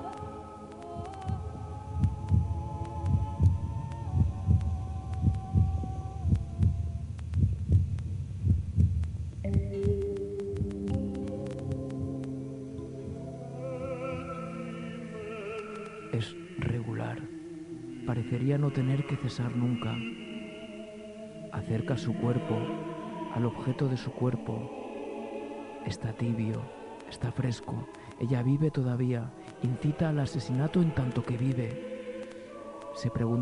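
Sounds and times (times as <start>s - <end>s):
sustained humming tones: 0.0s - 33.4s
distant heartbeat: 1.0s - 12.3s
speech: 16.2s - 16.4s, 18.2s - 20.2s, 21.6s - 24.8s, 25.8s - 31.9s, 33.0s - 33.4s.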